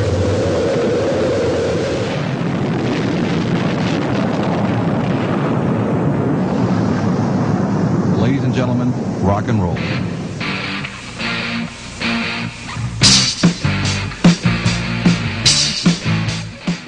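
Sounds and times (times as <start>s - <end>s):
rocket main engines roaring at liftoff: 0.0s - 16.8s
speech: 9.4s - 10.2s.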